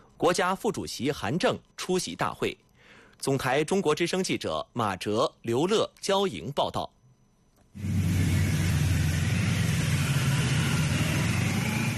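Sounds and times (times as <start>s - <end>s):
speech: 0.2s - 2.6s, 3.2s - 7.0s
ceremonial car motorcade engines rumbling: 7.8s - 11.9s.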